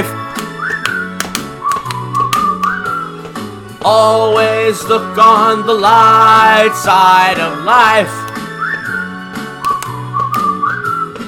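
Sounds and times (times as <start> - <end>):
person whistling a bouncy melody: 0.0 - 3.4, 7.7 - 11.2
musical backing: 0.0 - 11.2
sharp percussive taps: 0.4 - 4.0
speech: 3.8 - 8.2.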